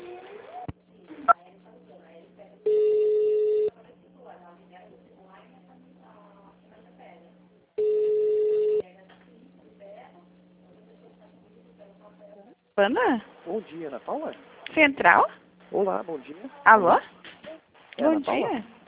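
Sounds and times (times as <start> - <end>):
telephone ringback tone while a bank call is transferred to an extension: 2.7 - 3.7, 7.8 - 8.8
speech: 12.8 - 17.2, 18.0 - 18.8.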